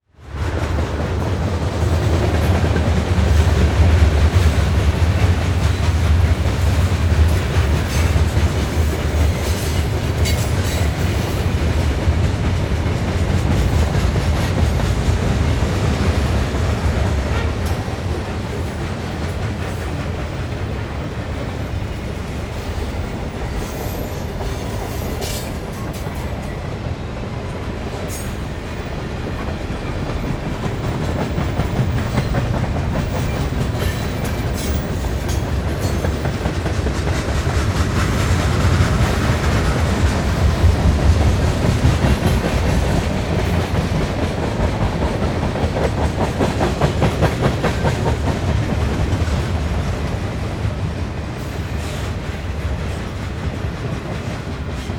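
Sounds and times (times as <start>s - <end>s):
train passing by: 0.0s - 54.9s.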